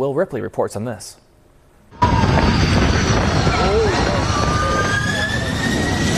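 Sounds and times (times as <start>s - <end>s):
speech: 0.0s - 1.2s
airliner jet engines roaring during aborted landing: 1.9s - 6.1s
gusty wind noise: 2.0s - 6.1s.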